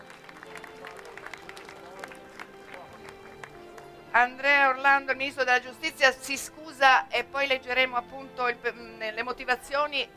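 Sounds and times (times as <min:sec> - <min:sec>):
audience applause: 0:00.0 - 0:03.9
speech: 0:04.2 - 0:10.1.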